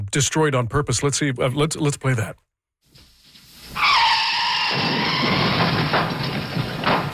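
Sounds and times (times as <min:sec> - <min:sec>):
speech: 0:00.1 - 0:02.5
car tires screeching in a skid: 0:03.7 - 0:07.1
car crashing into building: 0:03.8 - 0:07.1.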